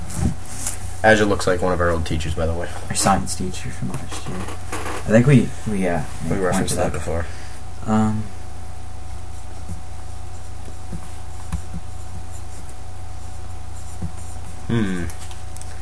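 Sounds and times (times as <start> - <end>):
low hum: 0.0 - 15.7
speech: 1.0 - 8.4, 14.7 - 15.2
pen scratching and tapping on paper: 9.4 - 14.6
brief vocal sounds: 14.7 - 15.2.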